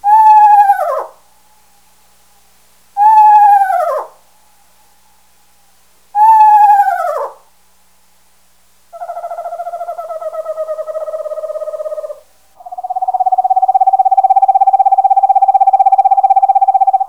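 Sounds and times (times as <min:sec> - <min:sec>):
screech owl calling: 0:00.0 - 0:01.3, 0:03.0 - 0:04.3, 0:06.2 - 0:07.5, 0:08.9 - 0:17.0.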